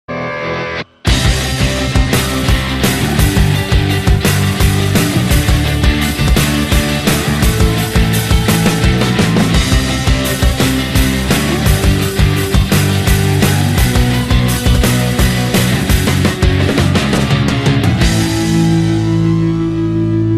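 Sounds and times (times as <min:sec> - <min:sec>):
guitar: 0:00.0 - 0:20.3
drums: 0:01.0 - 0:20.3.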